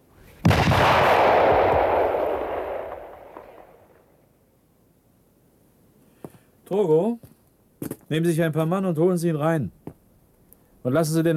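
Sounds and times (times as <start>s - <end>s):
rifle volley fired by a whole guard detail on command: 0.4s - 4.0s
speech: 6.7s - 7.3s, 8.1s - 9.8s, 10.8s - 11.3s.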